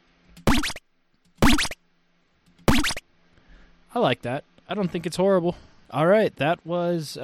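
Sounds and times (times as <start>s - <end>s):
chiptune sci-fi power-up sound effect: 0.5s - 0.8s, 1.4s - 1.8s, 2.7s - 3.0s
speech: 3.9s - 7.2s.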